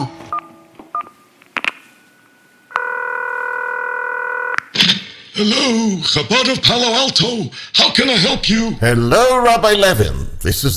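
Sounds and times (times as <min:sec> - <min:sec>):
telephone ringing tone: 0:02.7 - 0:04.6
speech: 0:05.4 - 0:10.7.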